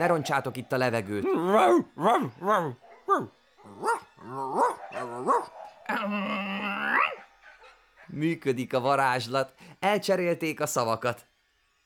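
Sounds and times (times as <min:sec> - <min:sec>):
speech: 0:00.0 - 0:07.2, 0:08.1 - 0:11.3
dog drawn-out whining howl: 0:01.1 - 0:07.7
dog yelping barks: 0:01.2 - 0:06.1.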